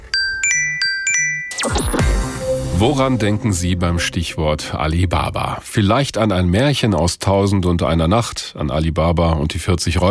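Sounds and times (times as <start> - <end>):
electronic smartphone reminder chime: 0.0 - 2.3
speech: 2.8 - 10.0.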